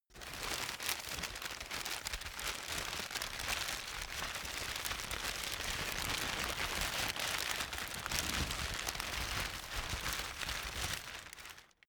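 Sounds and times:
paper rustling while stuffing: 0:00.2 - 0:11.7.

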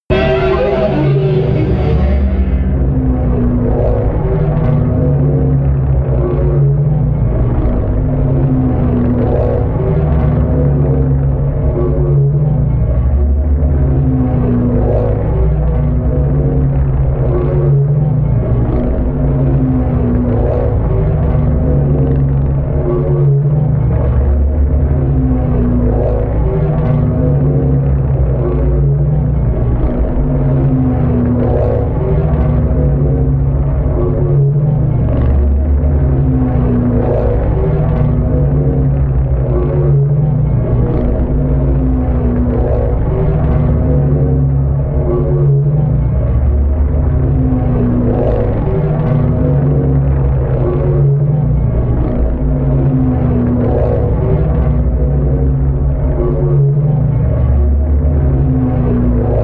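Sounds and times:
drone with erratic growls: 0:00.0 - 0:59.4.

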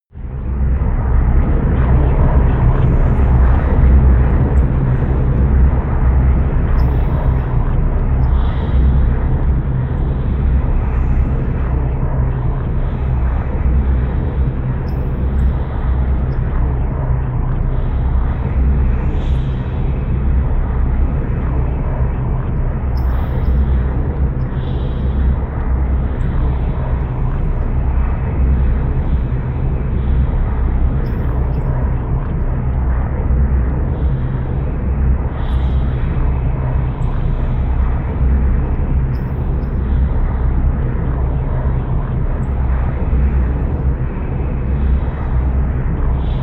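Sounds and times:
low storm drone: 0:00.1 - 0:46.4.

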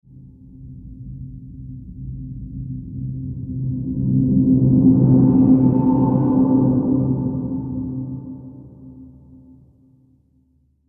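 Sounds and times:
tonal mystic riser: 0:03.8 - 0:09.5.

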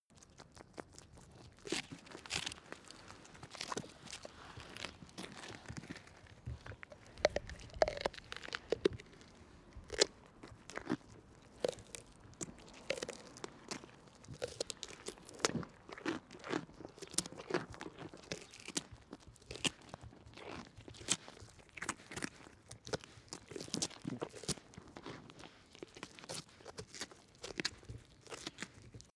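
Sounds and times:
goat eating a carrot: 0:00.1 - 0:29.1.

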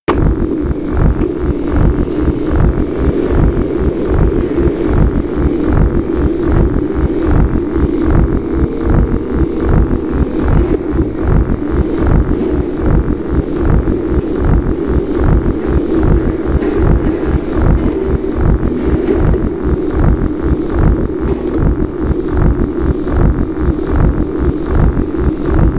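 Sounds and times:
low hypnotic industrial atmosphere: 0:00.0 - 0:25.7.

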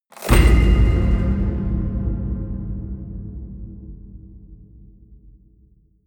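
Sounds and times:
small hollow metal crash ringing out: 0:00.1 - 0:05.7.

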